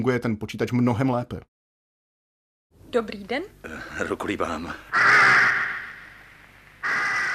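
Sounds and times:
speech: 0.0 - 1.6, 2.9 - 5.3
raven giving harsh raspy caws: 4.7 - 7.3.

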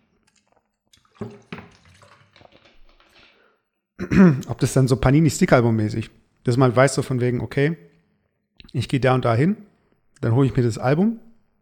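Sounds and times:
wet slurping gulps of water: 0.0 - 3.6
speech: 1.2 - 1.5, 4.0 - 7.9, 8.6 - 11.3.

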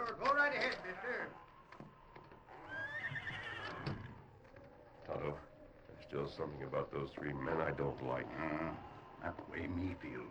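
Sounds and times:
speech: 0.1 - 1.5, 5.1 - 10.2
horse neighing in a barn: 2.5 - 4.0.

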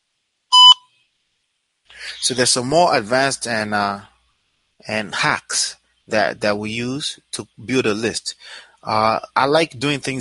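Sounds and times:
voicemail beep: 0.5 - 0.8
speech: 2.2 - 4.1, 4.8 - 10.2.

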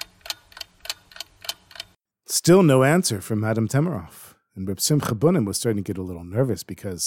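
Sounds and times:
wall clock ticking: 0.0 - 2.0
speech: 2.4 - 7.0.

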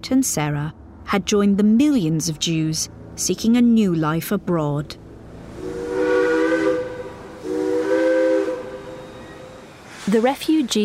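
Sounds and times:
speech: 0.0 - 5.0, 10.1 - 10.8
steam hissing: 5.5 - 10.7
steam locomotive whistle blasts: 5.6 - 9.9.

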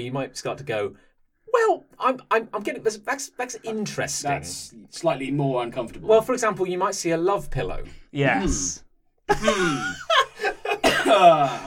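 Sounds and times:
speech: 0.0 - 10.4, 11.0 - 11.6
person coughing: 10.7 - 11.6
person clearing throat: 10.8 - 11.6.

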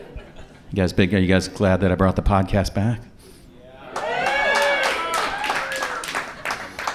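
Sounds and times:
speech: 0.7 - 3.1
light scattered applause from a small audience: 3.9 - 6.9.

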